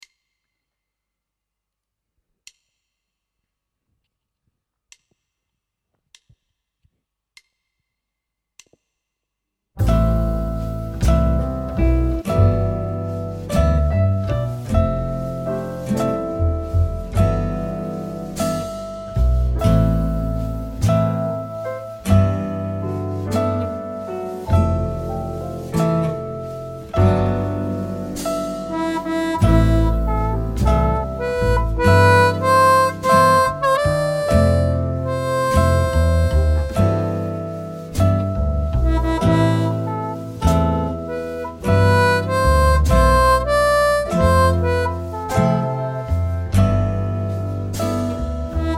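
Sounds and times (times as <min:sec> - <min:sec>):
harp: 0:09.8 - 0:48.7.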